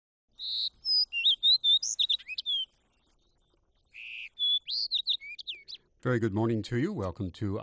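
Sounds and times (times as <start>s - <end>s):
fox sparrow singing: 0.3s - 6.0s
speech: 0.4s - 0.8s, 6.0s - 7.6s.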